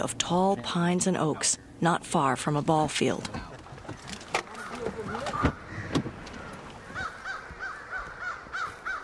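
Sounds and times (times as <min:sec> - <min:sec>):
speech: 0:00.0 - 0:03.5
flock of American crows cawing at evening roost: 0:04.4 - 0:09.0.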